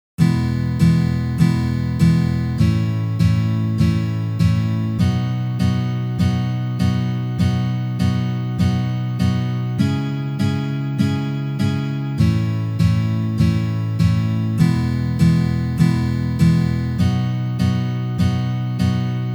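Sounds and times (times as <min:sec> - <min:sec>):
guitar playing E major chord exercises: 0:00.2 - 0:19.3.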